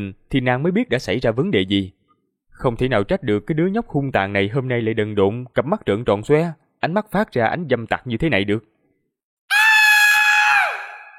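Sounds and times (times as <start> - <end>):
speech: 0.0 - 2.0, 2.6 - 8.7
loud piercing scream: 9.5 - 11.1.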